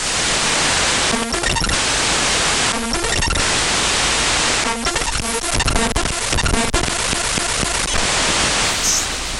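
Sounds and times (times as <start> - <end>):
harsh digital static from executable file data played as raw audio: 0.2 - 9.0
glitchy buzzy tones: 0.8 - 8.5
stuttering clicks: 1.1 - 1.8, 2.7 - 3.4, 4.6 - 8.0.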